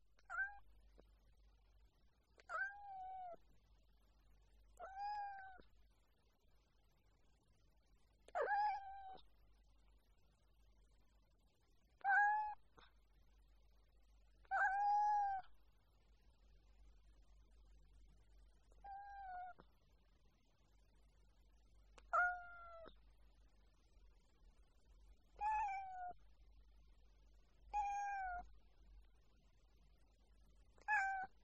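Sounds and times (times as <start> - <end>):
cat meowing softly in a happy mood: 0.2 - 0.7, 2.4 - 3.4, 4.8 - 5.7, 8.3 - 9.3, 12.0 - 12.9, 14.4 - 15.6, 18.6 - 19.7, 22.0 - 23.0, 25.4 - 26.2, 27.7 - 28.6, 30.8 - 31.4.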